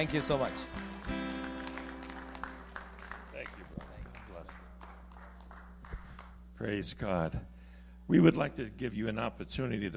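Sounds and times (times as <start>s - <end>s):
speech: 0.0s - 0.9s, 6.6s - 7.5s, 8.1s - 9.9s
crowd clapping in a reverberant room: 0.0s - 6.5s
low electrical hum: 0.0s - 9.9s.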